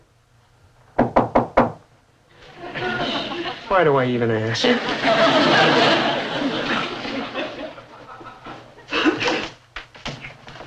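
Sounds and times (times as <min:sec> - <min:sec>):
knocking on a wooden door: 0:01.0 - 0:01.8
laughter: 0:02.4 - 0:09.6
speech: 0:03.7 - 0:06.0.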